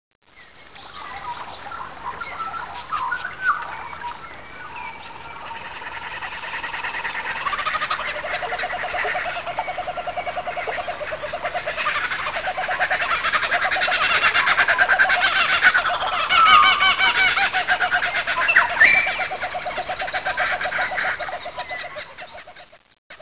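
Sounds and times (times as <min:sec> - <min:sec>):
rainforest ambience: 0:00.2 - 0:23.1.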